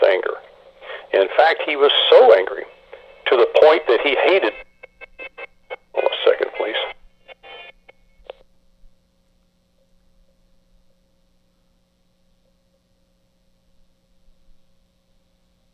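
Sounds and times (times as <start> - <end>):
faint steady electronic tone: 0.0 - 15.7
speech: 1.2 - 2.7, 3.3 - 4.6.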